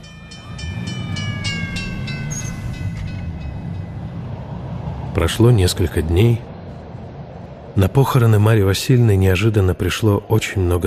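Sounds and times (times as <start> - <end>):
tram high metallic wheel squeal: 0.0 - 4.4
tram rolling along its rails: 0.0 - 10.8
speech: 5.2 - 6.5, 7.8 - 10.8.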